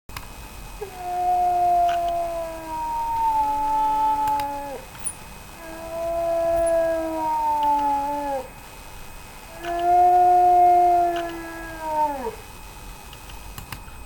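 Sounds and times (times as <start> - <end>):
wolf: 0.8 - 8.5, 9.5 - 12.5.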